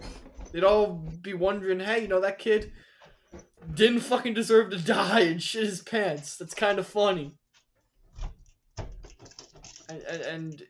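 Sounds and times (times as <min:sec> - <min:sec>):
speech: 0:00.5 - 0:07.4, 0:09.9 - 0:10.6
typing on a computer keyboard: 0:08.9 - 0:10.6.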